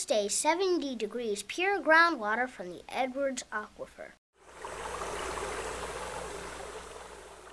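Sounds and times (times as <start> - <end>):
speech: 0.0 - 4.2
creek water pouring through a grate into a tunnel under a sidewalk: 4.5 - 7.5.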